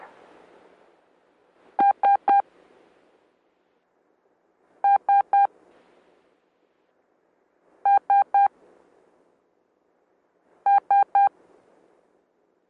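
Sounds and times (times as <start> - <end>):
Morse code letter S as short electronic beeps: 1.8 - 2.4, 4.8 - 5.5, 7.9 - 8.5, 10.7 - 11.3.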